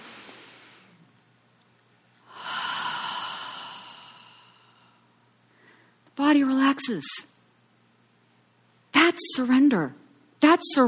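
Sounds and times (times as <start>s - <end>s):
deep breath in: 2.2s - 6.0s
speech: 6.2s - 7.4s, 9.4s - 10.8s.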